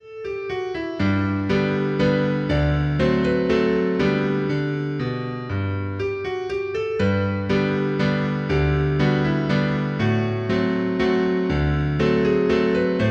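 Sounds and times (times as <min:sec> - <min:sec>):
instrumental folk dance music: 0:00.0 - 0:13.0.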